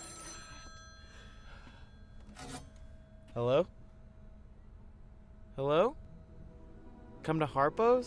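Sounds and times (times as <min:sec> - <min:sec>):
payphone ringing with an electronic trill: 0:00.0 - 0:03.0
speech: 0:03.4 - 0:03.8, 0:05.6 - 0:06.0, 0:07.2 - 0:08.0.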